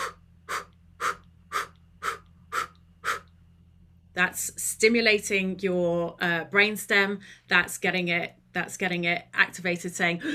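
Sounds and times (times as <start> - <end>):
forceful breaths blown out from the diaphragm during a breathing exercise: 0.0 - 3.3
speech: 4.2 - 10.3.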